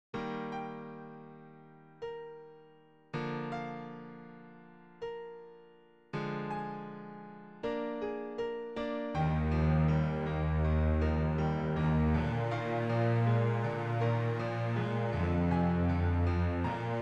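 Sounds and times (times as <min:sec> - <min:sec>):
piano in a duo with double bass: 0:00.1 - 0:17.0
double bass in a duo with piano: 0:09.4 - 0:17.0.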